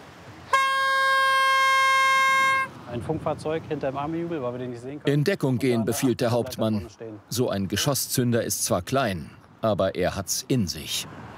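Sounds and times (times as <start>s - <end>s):
warning horn blast: 0.5s - 2.8s
speech: 2.9s - 11.3s.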